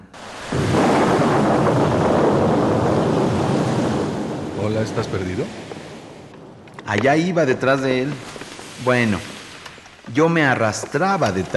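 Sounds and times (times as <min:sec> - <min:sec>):
rushing wind of a storm at night: 0:00.0 - 0:10.1
deep rumble of thunder in a storm: 0:00.2 - 0:09.8
speech: 0:04.8 - 0:05.7, 0:06.9 - 0:09.3, 0:10.1 - 0:11.5.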